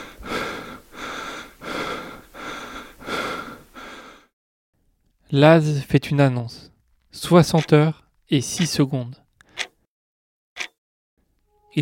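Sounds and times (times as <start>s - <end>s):
exhausted runner's heavy ragged breathing after sprinting 200 metres: 0.0s - 4.4s
speech: 5.3s - 9.2s.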